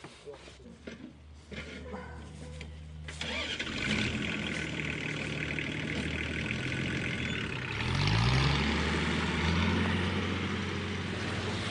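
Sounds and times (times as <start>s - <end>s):
tractor engine droning while digging up potato crop: 2.4s - 11.6s.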